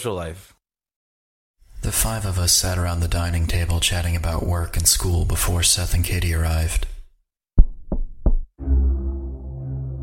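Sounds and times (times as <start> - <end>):
speech: 0.0 - 0.6, 1.8 - 7.0
firm loud knocks on a door: 7.6 - 8.5
low continuous rumbling hum: 8.6 - 10.0.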